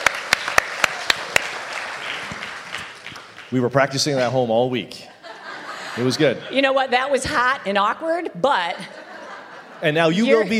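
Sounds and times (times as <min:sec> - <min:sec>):
scattered audience applause: 0:00.0 - 0:03.7
speech: 0:03.5 - 0:05.1, 0:06.0 - 0:09.0, 0:09.8 - 0:10.5
laughter: 0:05.0 - 0:06.9, 0:08.6 - 0:10.5.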